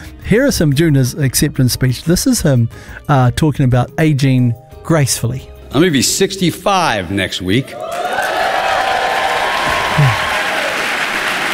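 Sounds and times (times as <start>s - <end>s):
speech: 0.3s - 8.3s
crowd whooping: 7.6s - 11.5s
large audience clapping and cheering: 7.7s - 11.5s.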